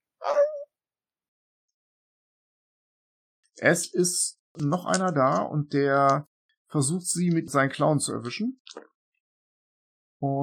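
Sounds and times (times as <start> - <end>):
human voice imitating cat-like meowing cry of pain: 0.2 - 0.7
speech: 3.6 - 8.9, 10.2 - 10.4.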